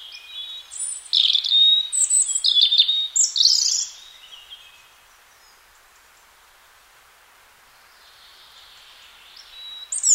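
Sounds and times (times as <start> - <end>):
European robin Erithacus rubecula singing: 0.0 - 5.6, 7.9 - 10.1.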